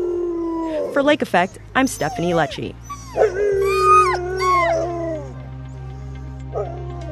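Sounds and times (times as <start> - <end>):
Door County sled dogs howling and whimpering: 0.0 - 7.1
speech: 1.0 - 3.4
sled dog short yelp: 1.5 - 5.3.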